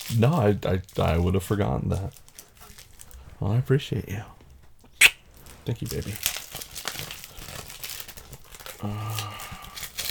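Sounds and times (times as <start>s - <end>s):
crinkly wrapping paper being unwrapped: 0.0s - 3.2s, 5.3s - 10.0s
speech: 0.1s - 2.3s, 3.4s - 4.4s, 5.6s - 6.3s, 8.8s - 9.4s.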